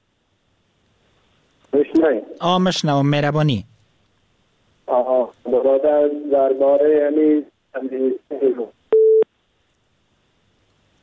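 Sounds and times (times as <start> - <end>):
voices: 1.7 - 2.5, 4.8 - 8.8
speech: 1.8 - 3.7, 5.1 - 8.8
telephone busy tone after a phone call is cut off: 8.9 - 9.2.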